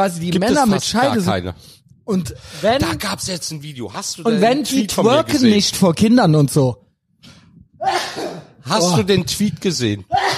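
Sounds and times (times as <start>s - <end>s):
speech: 0.0s - 10.3s
loud sneeze: 7.8s - 8.6s, 10.2s - 10.3s.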